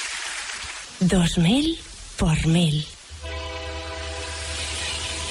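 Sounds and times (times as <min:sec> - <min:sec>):
speech: 0:01.0 - 0:02.9
Renfe train horn: 0:03.2 - 0:05.3.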